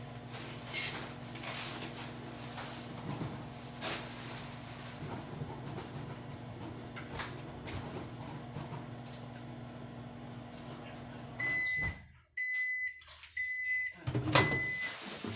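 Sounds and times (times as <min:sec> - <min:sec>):
microwave oven humming: 0:00.0 - 0:15.0
microwave oven high electronic beeps: 0:11.3 - 0:15.0.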